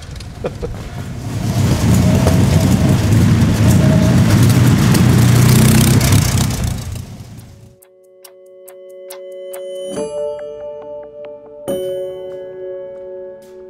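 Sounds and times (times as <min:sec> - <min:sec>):
12-litre 300-horsepower V8 racing car engine revving: 0:00.8 - 0:07.7.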